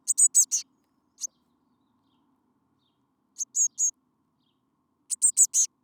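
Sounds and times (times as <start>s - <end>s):
Eurasian blue tit Cyanistes caeruleus calling with high short notes: 0.1s - 0.6s, 3.4s - 3.9s, 5.1s - 5.7s.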